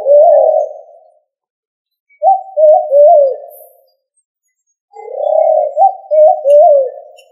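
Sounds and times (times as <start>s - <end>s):
pigeon cooing: 0.0s - 1.2s, 2.2s - 3.8s, 5.0s - 7.3s.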